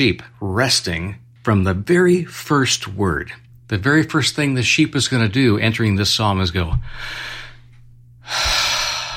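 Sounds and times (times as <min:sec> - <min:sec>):
speech: 0:00.0 - 0:07.4, 0:08.3 - 0:08.7
deep breath in and out: 0:06.8 - 0:09.1.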